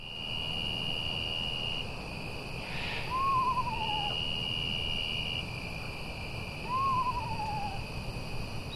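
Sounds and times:
insects buzzing at night: 0.0s - 8.7s
screech owl descending quavering whinny calls: 2.6s - 5.3s, 6.6s - 7.8s.

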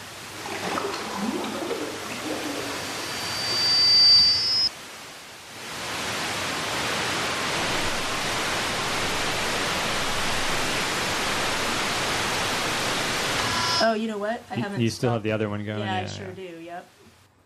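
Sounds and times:
crackly static from recorded satellite radio signals: 0.0s - 17.4s
faint high whistling tones from satellite radio signals: 2.3s - 4.7s
speech: 13.9s - 17.0s.

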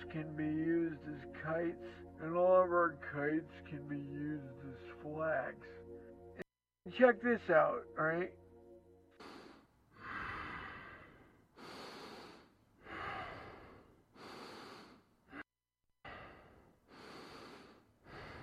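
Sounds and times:
speech: 0.2s - 5.8s, 6.8s - 8.4s
woman breathing heavily in her sleep: 9.1s - 18.4s.

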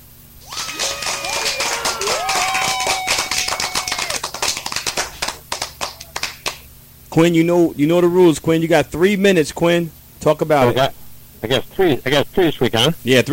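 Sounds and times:
whistles: 0.4s - 4.3s
people whooping: 0.4s - 6.6s
lively hand clapping welcoming a caller on the air: 0.5s - 6.7s
speech: 7.2s - 13.3s.

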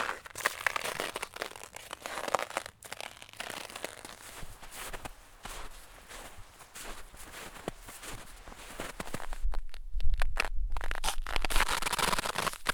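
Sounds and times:
footsteps crunching in snow: 0.0s - 12.7s
deeper, heavier low rumbling: 8.2s - 11.9s.

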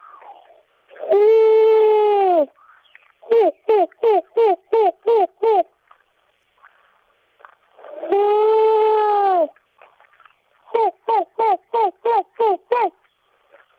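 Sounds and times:
person imitating an owl hooting: 0.0s - 5.8s, 7.7s - 9.6s, 10.6s - 13.0s.

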